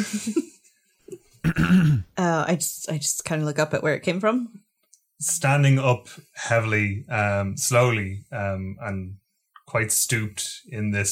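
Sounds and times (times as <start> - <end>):
speech: 0.0 - 0.4, 1.5 - 4.6, 5.2 - 11.0
throat clearing: 1.4 - 2.1.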